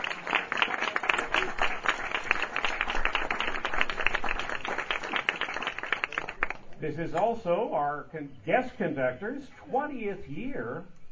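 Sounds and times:
crowd applauding: 0:00.0 - 0:06.7
speech: 0:06.8 - 0:11.0.

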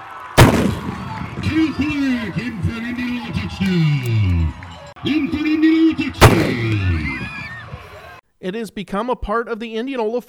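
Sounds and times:
large crowd cheering and shouting at outdoor high school football game: 0:00.0 - 0:08.2
cannon firing at outdoor high school football game: 0:00.4 - 0:03.4, 0:06.2 - 0:07.6
speech: 0:01.5 - 0:07.3, 0:08.4 - 0:10.2.

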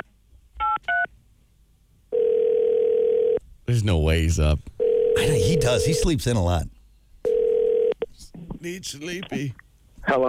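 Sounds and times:
steady loud telephone tone: 0:02.1 - 0:03.4, 0:04.8 - 0:06.0, 0:07.3 - 0:08.0
speech: 0:03.7 - 0:06.8, 0:08.6 - 0:10.2.

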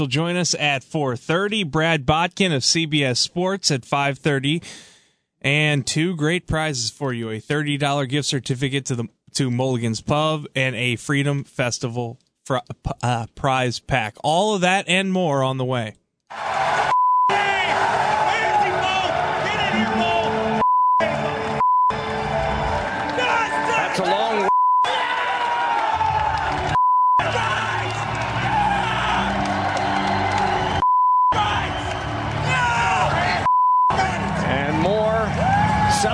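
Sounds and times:
speech: 0:00.0 - 0:16.7
noisy crowd: 0:16.3 - 0:36.1
people screaming and shouting: 0:16.5 - 0:21.6, 0:22.4 - 0:36.1
censor beeps: 0:20.6 - 0:22.0, 0:24.5 - 0:24.9, 0:26.8 - 0:27.2, 0:30.8 - 0:31.4.

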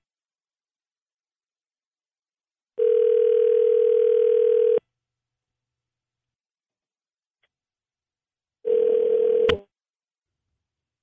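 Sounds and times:
long steady phone-line tones: 0:02.8 - 0:04.8, 0:08.7 - 0:09.5.

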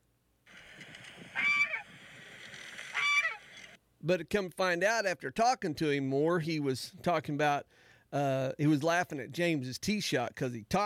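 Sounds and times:
goose honking in loud harsh bursts: 0:01.2 - 0:01.9, 0:02.8 - 0:03.8
speech: 0:04.0 - 0:10.8.

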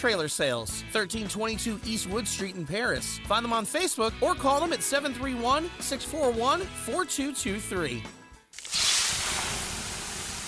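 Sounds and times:
speech: 0:00.0 - 0:08.2
water poured on 800-degree sauna rocks hissing and sizzling: 0:08.6 - 0:10.4.

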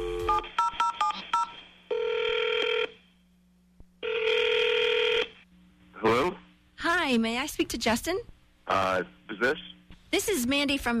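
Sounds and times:
long steady telephone ringing tones: 0:00.0 - 0:03.0, 0:04.0 - 0:05.3
speech: 0:07.1 - 0:10.9.

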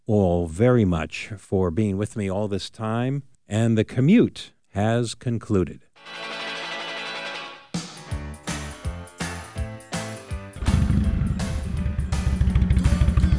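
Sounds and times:
speech: 0:00.1 - 0:06.3
motorcycle engine cranking, starting and rumbling: 0:10.6 - 0:13.3.

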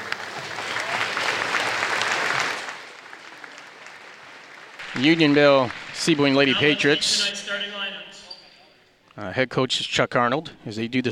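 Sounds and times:
audience applause: 0:00.0 - 0:08.6
speech: 0:05.0 - 0:07.8, 0:09.2 - 0:11.1.

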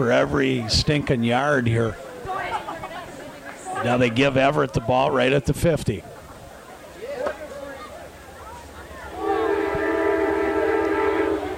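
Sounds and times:
speech: 0:00.0 - 0:02.1, 0:03.8 - 0:06.1
faint indistinct voices: 0:00.0 - 0:11.5
low rumble of rail traffic in the rain: 0:08.1 - 0:11.5
multi-tone train horn blast: 0:09.1 - 0:11.5.

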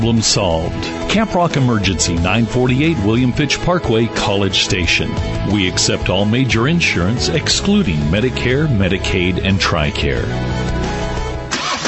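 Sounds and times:
speech: 0:00.0 - 0:10.8
car engine starting during warm-up: 0:06.6 - 0:11.8.

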